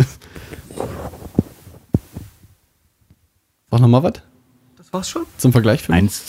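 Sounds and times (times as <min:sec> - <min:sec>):
foam windscreen rustling and scraping on a microphone: 0:00.4 - 0:02.6
soft thumps of a foam windscreen put onto an SM7B microphone: 0:00.4 - 0:03.2
speech: 0:03.8 - 0:04.3, 0:04.9 - 0:06.2.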